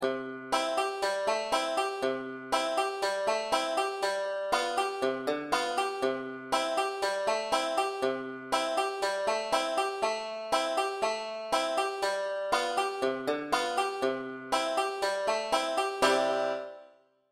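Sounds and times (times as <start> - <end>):
five-string banjo accompaniment: 0.0 - 16.9.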